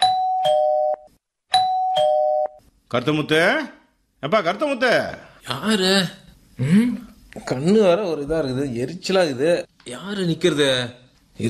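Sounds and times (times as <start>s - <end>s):
electronic doorbell two-note ding-dong chime at a house door: 0.0s - 2.6s
speech: 2.9s - 11.4s.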